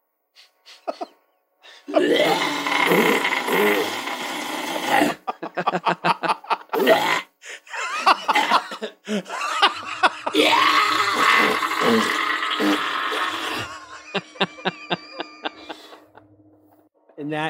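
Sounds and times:
laughter: 0.7 - 1.2, 5.0 - 6.9, 7.5 - 10.7, 13.2 - 16.3
person screaming: 1.9 - 5.2, 6.8 - 7.2, 10.3 - 13.8
rapid sputtering fart noises: 2.0 - 5.3, 6.8 - 7.3, 10.4 - 13.8.

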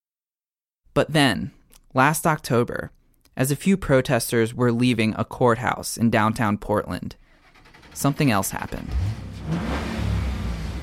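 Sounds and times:
speech: 1.0 - 7.2, 7.9 - 9.9
Mustang engine revving as it drives by: 7.4 - 10.8.

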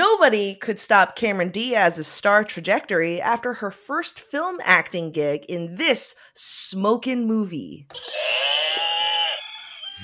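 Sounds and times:
speech: 0.2 - 8.8
barnyard animal call used as quiz game buzzer: 8.0 - 10.0.

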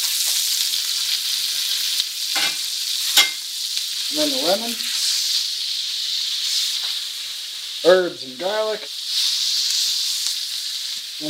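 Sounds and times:
butter sizzling in a hot pan: 0.0 - 11.2
speech: 4.1 - 5.0, 7.8 - 9.0.

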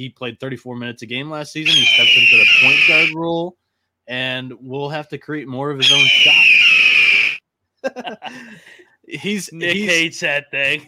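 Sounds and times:
speech: 0.0 - 6.4, 7.8 - 10.8
eagle screeching and crying: 1.7 - 3.1, 5.8 - 7.4
laughter: 7.8 - 8.6.

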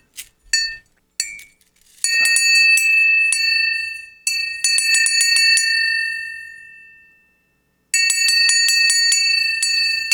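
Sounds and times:
small metal bell ringing: 0.6 - 10.1.

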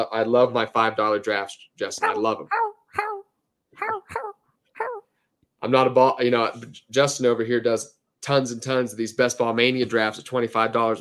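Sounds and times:
speech: 0.0 - 2.7, 5.6 - 11.0
person imitating a dog barking: 2.0 - 5.1.

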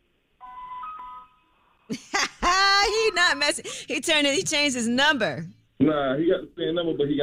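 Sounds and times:
electronic phone call ringing tone: 0.4 - 1.6
speech: 1.9 - 2.2, 3.2 - 7.2.

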